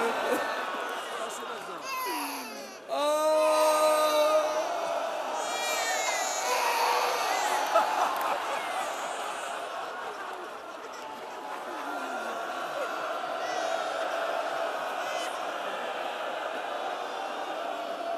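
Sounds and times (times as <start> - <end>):
laughter: 0.0 - 2.7, 6.5 - 17.8
crowd murmuring: 0.0 - 18.1
baby wailing loudly: 1.8 - 4.7, 5.4 - 7.8.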